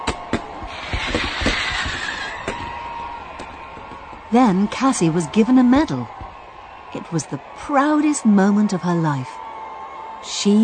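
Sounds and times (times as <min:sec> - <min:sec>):
firework sharp pops and snaps: 0:00.0 - 0:02.8
fizzing fireworks hissing and crackling at a party: 0:00.0 - 0:04.4
speech: 0:04.3 - 0:06.2, 0:07.1 - 0:09.4, 0:10.4 - 0:10.6.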